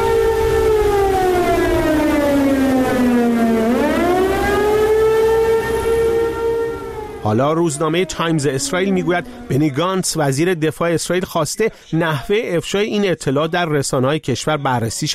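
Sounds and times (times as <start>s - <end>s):
civil-defence air-raid siren warning of missile attack, set off by a cyberattack: 0.0s - 10.6s
speech: 7.3s - 15.1s.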